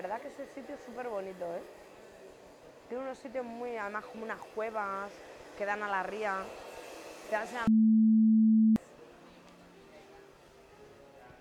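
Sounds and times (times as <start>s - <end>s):
speech: 0.0s - 1.9s, 2.9s - 6.6s, 7.2s - 7.9s
mobile phone single low electronic beep: 7.7s - 8.8s.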